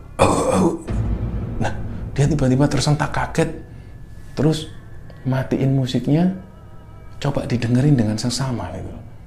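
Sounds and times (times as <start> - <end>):
older man coughing: 0.2 - 0.9
speech: 0.5 - 0.9, 1.6 - 3.7, 4.4 - 6.5, 7.2 - 9.0.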